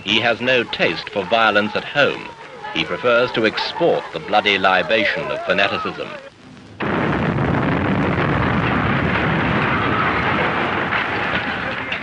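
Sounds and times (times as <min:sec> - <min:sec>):
speech: 0:00.0 - 0:06.9
bomb explosion on a street in Belfast: 0:06.7 - 0:12.0.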